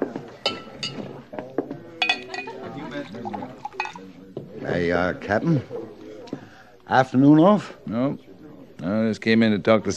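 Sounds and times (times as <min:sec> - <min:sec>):
sharp glass clinks: 0:00.4 - 0:01.1, 0:02.0 - 0:04.1
glass of rye whiskey being poured: 0:02.0 - 0:04.1
speech: 0:03.1 - 0:05.8, 0:06.9 - 0:09.9.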